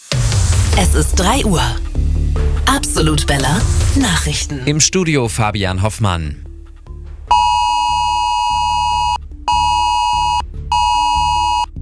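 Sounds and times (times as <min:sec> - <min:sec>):
speech: 0:00.8 - 0:06.5
phone emergency alert test tone: 0:07.3 - 0:11.7.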